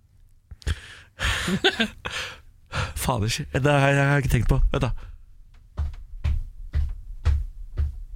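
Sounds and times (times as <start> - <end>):
speech: 1.2 - 2.4, 3.1 - 5.1
heavy stomping footsteps: 5.5 - 8.1.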